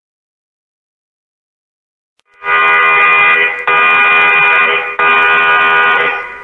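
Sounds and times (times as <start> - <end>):
ship's general alarm buzzing blasts: 2.3 - 6.4.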